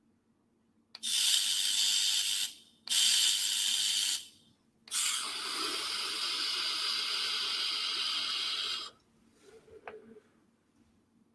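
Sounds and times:
vape coil firing and spitting during a puff: 1.0 - 4.3, 4.9 - 9.0.

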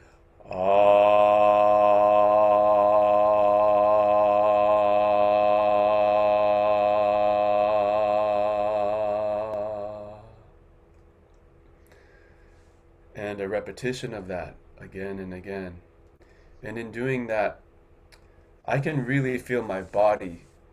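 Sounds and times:
sustained vocal toning on an open ah tone: 0.4 - 10.5
speech: 13.6 - 15.9, 16.6 - 17.6, 18.7 - 20.5.

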